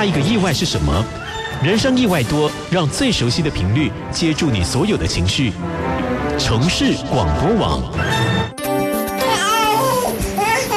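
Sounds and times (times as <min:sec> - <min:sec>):
speech: 0:00.0 - 0:08.5
baby crying at home: 0:09.2 - 0:10.7.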